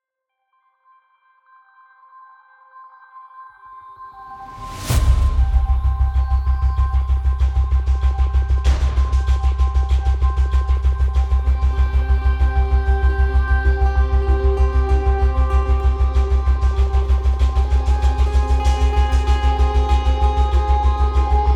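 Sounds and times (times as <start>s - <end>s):
pulse bass with tremolo: 4.9s - 21.5s.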